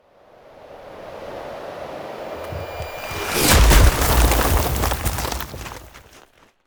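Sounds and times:
ice spell area damage impact: 0:02.5 - 0:06.3.

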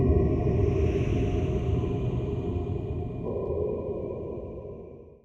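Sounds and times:
mansion ambience: 0:00.1 - 0:05.2.

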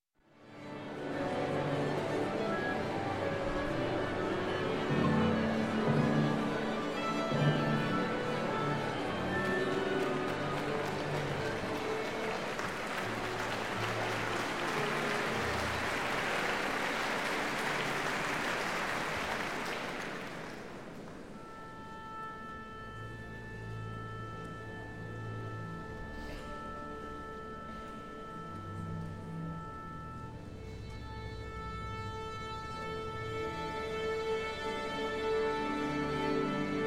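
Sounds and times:
orchestra tuning: 0:00.3 - 0:36.8
concert applause: 0:08.4 - 0:21.2.

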